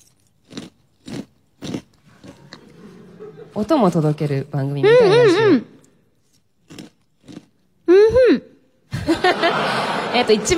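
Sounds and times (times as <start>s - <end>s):
crunchy snack eaten dry with a spoon like cornflakes: 0.0s - 2.6s, 6.2s - 7.7s
crackling chewing of crunchy snack: 0.0s - 2.8s, 5.7s - 7.8s
laughter: 2.4s - 3.7s, 8.9s - 10.5s
speech: 3.6s - 5.7s, 10.3s - 10.5s.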